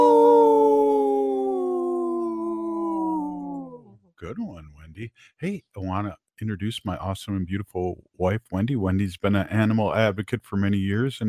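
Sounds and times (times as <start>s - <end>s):
person imitating a wolf howl: 0.0s - 3.9s
speech: 4.2s - 11.2s.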